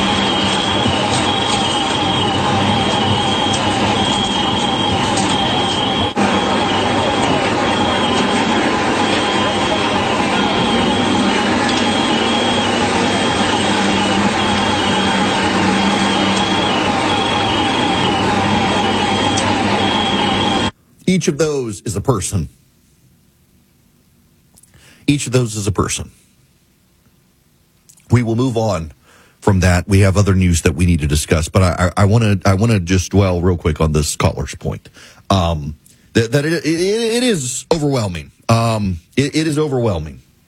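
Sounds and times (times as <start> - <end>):
dense rumble and commotion: 0.0 - 20.8
firefighter PASS distress alarms chirping under rubble: 0.0 - 20.8
speech: 21.2 - 22.6, 25.1 - 26.3, 28.1 - 40.2.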